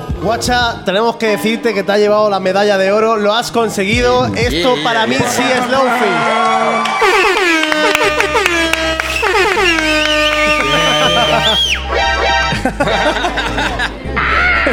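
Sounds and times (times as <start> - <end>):
speech: 0.2 - 8.6, 11.4 - 13.7
laughter: 4.8 - 14.7
air horn blasts used as a novelty sound effect: 6.8 - 12.6.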